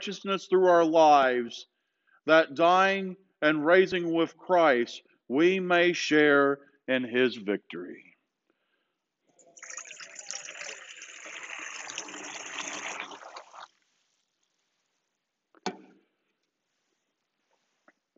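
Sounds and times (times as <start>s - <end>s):
speech: 0.0s - 8.1s
holy water pouring and trickling: 9.4s - 14.8s.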